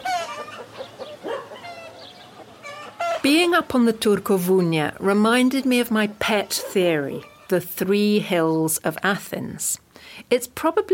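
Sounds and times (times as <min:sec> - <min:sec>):
chickens clucking and squawking at village smallholdings: 0:00.0 - 0:03.6, 0:06.0 - 0:07.6
speech: 0:03.2 - 0:10.9.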